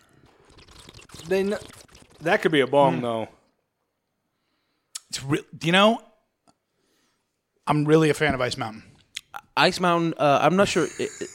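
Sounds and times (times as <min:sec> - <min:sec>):
person drinking water: 0:00.0 - 0:03.2
speech: 0:01.2 - 0:03.4, 0:05.2 - 0:06.1, 0:07.7 - 0:08.9, 0:09.6 - 0:11.3.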